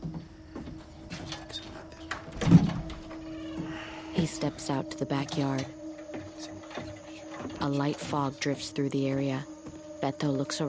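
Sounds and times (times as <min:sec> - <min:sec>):
door being opened: 0:00.0 - 0:04.3, 0:05.2 - 0:08.5
faint steady hum: 0:00.0 - 0:10.6
speech: 0:04.2 - 0:05.8, 0:07.6 - 0:10.6.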